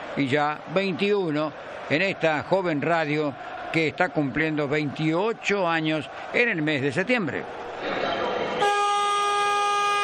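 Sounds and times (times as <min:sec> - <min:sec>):
speech: 0:00.2 - 0:08.0
basketball game horn blaring in one long steady tone: 0:08.6 - 0:10.0.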